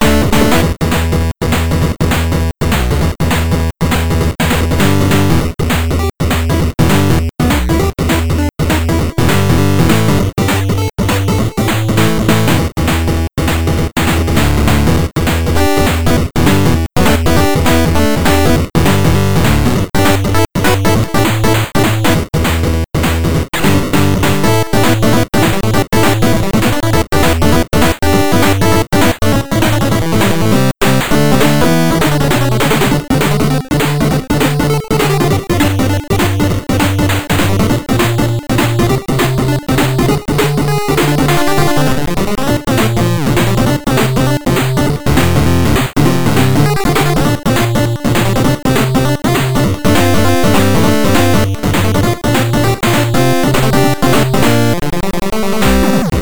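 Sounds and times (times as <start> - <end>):
8-bit chiptune music: 0.0 - 56.2.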